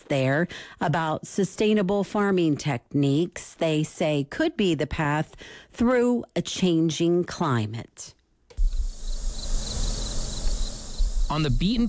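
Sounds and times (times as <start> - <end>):
speech: 0.1 - 8.2, 11.3 - 11.8
cicadas and crickets buzzing on a farm in summer during a drought: 8.6 - 11.8.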